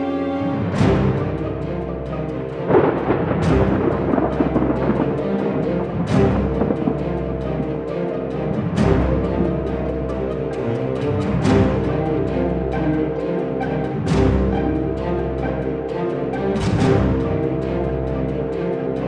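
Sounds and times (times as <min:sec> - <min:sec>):
rain: 0:00.0 - 0:19.0
rushing wind: 0:02.2 - 0:18.3
booming thunder crashes: 0:02.7 - 0:07.9.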